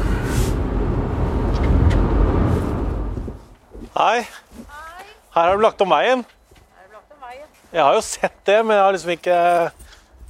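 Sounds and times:
car engine turning onto a side road: 0:00.0 - 0:03.5
road rumble: 0:00.0 - 0:10.2
speech: 0:04.0 - 0:04.4, 0:05.4 - 0:06.4, 0:07.7 - 0:09.8.

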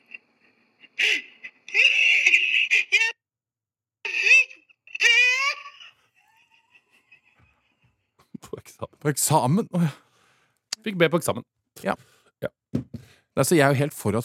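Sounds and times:
woman crying and sobbing: 0:00.8 - 0:03.2, 0:04.0 - 0:08.3
speech: 0:09.1 - 0:10.0, 0:10.9 - 0:12.5, 0:13.4 - 0:14.2.

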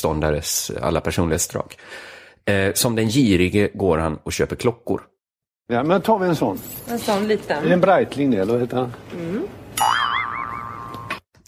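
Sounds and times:
speech: 0:00.0 - 0:05.1, 0:05.7 - 0:10.0
cartoon boing sound effect illustrating a pig's curly tail growing: 0:09.8 - 0:11.2.

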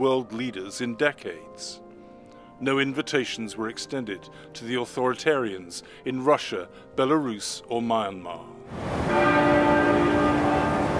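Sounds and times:
speech: 0:00.0 - 0:01.8, 0:02.6 - 0:09.4
church bell tolling at a state funeral: 0:09.0 - 0:10.9.

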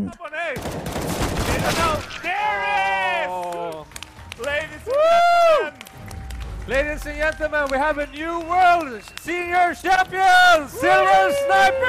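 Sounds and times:
speech: 0:00.0 - 0:00.8, 0:01.6 - 0:02.6, 0:06.7 - 0:11.8
video game gunfire: 0:00.6 - 0:02.3
people shouting and cheering excitedly: 0:01.5 - 0:11.8.

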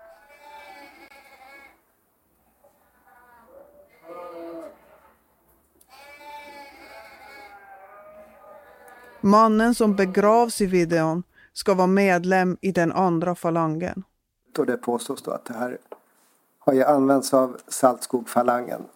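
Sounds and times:
flock of sheep bleating: 0:00.0 - 0:01.8, 0:03.0 - 0:05.2, 0:05.8 - 0:10.5
speech: 0:09.2 - 0:15.9, 0:16.7 - 0:18.9.

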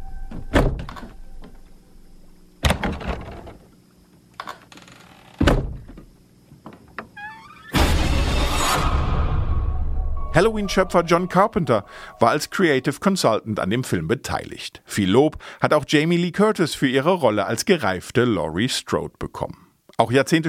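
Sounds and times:
cabinet door being shut: 0:00.5 - 0:00.9, 0:05.4 - 0:06.0
loud rushing noise: 0:07.8 - 0:10.3
speech: 0:10.4 - 0:20.4.

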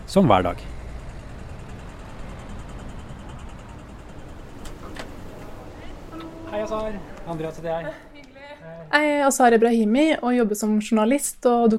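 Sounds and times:
dense city traffic at a busy intersection: 0:00.0 - 0:11.7
speech: 0:00.1 - 0:00.8, 0:06.7 - 0:08.1, 0:08.8 - 0:11.7
sharp metallic clicks: 0:00.6 - 0:07.3.

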